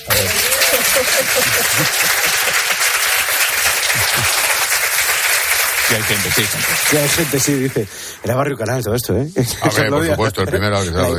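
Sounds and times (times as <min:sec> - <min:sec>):
laughter: 0:00.0 - 0:07.9, 0:09.4 - 0:11.1
large crowd applauding: 0:00.0 - 0:08.6
speech: 0:01.0 - 0:02.6, 0:05.9 - 0:11.1.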